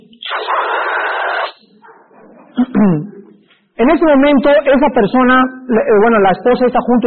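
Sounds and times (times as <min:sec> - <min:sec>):
voice imitating loudly slurping soup: 0:00.0 - 0:01.7
speech: 0:02.8 - 0:03.1, 0:03.8 - 0:07.0.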